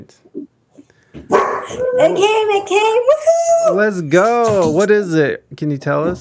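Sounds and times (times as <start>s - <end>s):
speech: 0.1s - 0.3s, 1.7s - 6.1s
dog barking: 1.3s - 2.3s.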